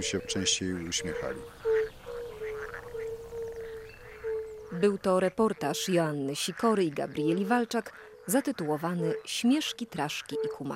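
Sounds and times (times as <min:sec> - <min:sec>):
speech: 0:00.0 - 0:01.6, 0:04.8 - 0:10.7
marsh frogs calling in a chorus: 0:00.0 - 0:10.7.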